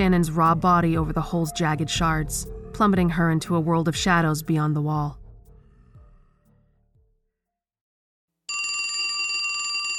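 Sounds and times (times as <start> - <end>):
speech: 0.0 - 5.2
telephone bell ringing: 8.5 - 9.9.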